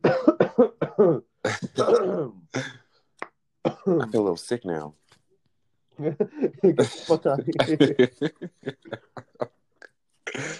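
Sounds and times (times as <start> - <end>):
person coughing: 0.0 - 2.8, 6.8 - 9.0, 10.3 - 10.5
speech: 0.6 - 2.4, 4.1 - 5.1, 6.0 - 9.5
laughter: 6.1 - 9.5.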